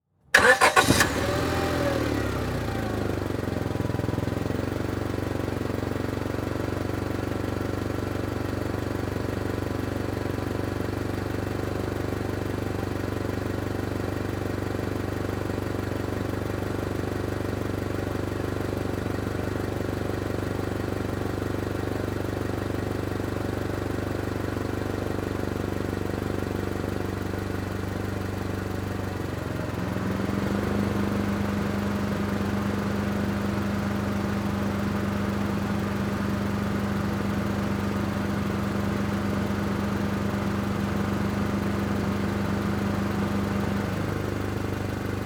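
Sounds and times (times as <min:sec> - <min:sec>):
Honda Civic engine starting: 0:00.3 - 0:06.4, 0:28.8 - 0:45.2
Honda Civic engine switching off: 0:00.3 - 0:09.5, 0:26.4 - 0:45.2
Honda Civic engine idling: 0:00.3 - 0:16.6, 0:17.2 - 0:45.2.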